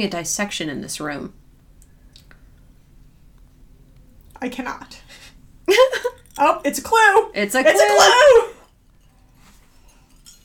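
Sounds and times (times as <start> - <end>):
speech: 0.0 - 1.4, 4.4 - 5.1, 5.7 - 8.5
quiet low hum: 0.0 - 10.4
glasses clinking in a toast: 7.7 - 10.4.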